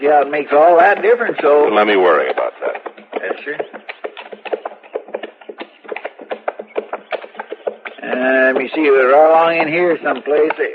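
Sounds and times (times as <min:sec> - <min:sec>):
speech: 0:00.0 - 0:03.8, 0:08.1 - 0:10.7
horse hooves clip-clopping as horses are ridden near a creek: 0:00.0 - 0:10.7.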